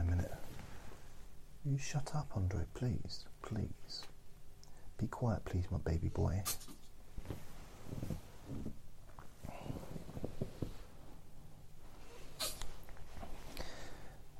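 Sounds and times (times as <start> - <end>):
faint shuffling and rustling: 0.0 - 4.2, 4.8 - 14.3
speech: 1.6 - 4.1, 5.0 - 8.7
small dog snorting and sneezing: 12.2 - 12.8.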